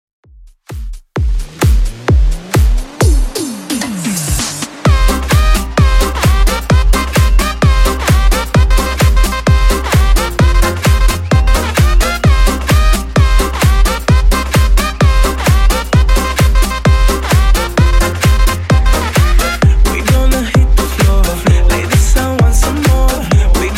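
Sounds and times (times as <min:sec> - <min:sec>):
Latin drum loop at 130 bpm: 0:00.4 - 0:23.7.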